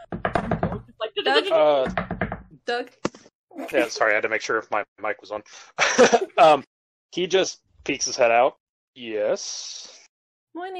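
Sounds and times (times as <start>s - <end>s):
laughter: 1.2s - 1.9s, 3.6s - 6.6s
speech: 1.2s - 2.0s, 2.7s - 10.0s, 10.6s - 10.7s
fists banging on doors: 1.9s - 2.5s.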